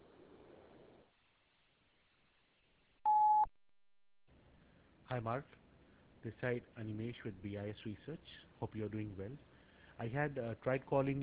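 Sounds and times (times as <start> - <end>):
loud steady electronic voicemail beep: 3.1 - 3.5
speech: 5.1 - 5.6, 6.2 - 11.2.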